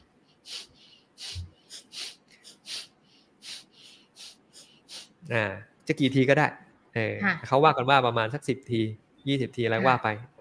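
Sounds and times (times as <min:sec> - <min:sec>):
short forceful exhalations through the nose in a breathing exercise: 0:00.0 - 0:05.2
speech: 0:05.3 - 0:10.3.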